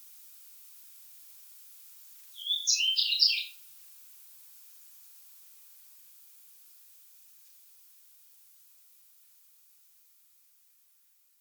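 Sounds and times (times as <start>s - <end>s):
European robin Erithacus rubecula warbling a liquid jumbled phrase: 2.4s - 3.4s.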